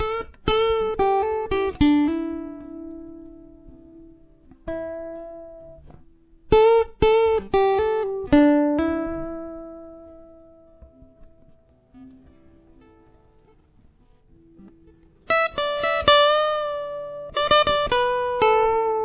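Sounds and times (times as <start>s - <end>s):
lead guitar chorus solo: 0.0s - 19.0s.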